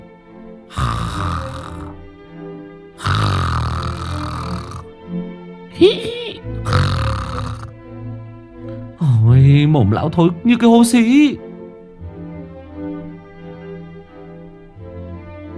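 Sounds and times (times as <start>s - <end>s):
old man snoring loudly: 0.7s - 2.0s, 3.0s - 4.9s, 6.5s - 7.8s
speech: 5.8s - 6.6s, 9.7s - 11.5s.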